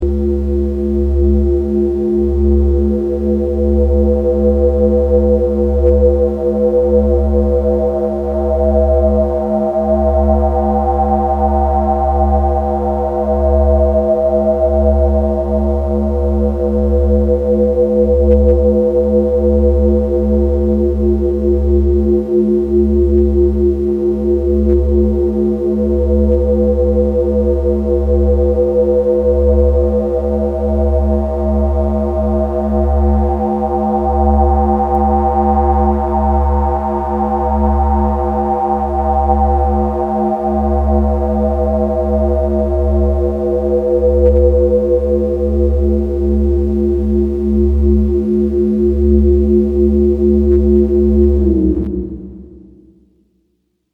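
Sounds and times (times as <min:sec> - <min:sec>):
four-voice drone with reverb: 0:00.0 - 0:53.3.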